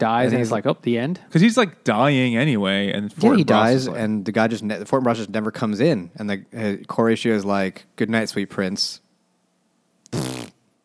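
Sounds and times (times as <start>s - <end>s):
speech: 0.0s - 9.0s, 10.1s - 10.5s
fart: 10.1s - 10.6s.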